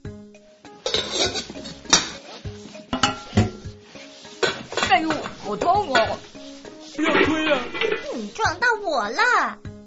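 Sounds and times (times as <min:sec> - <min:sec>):
metal pots and pans clanking together: 0:00.7 - 0:08.5
speech: 0:05.0 - 0:06.3, 0:08.2 - 0:09.6.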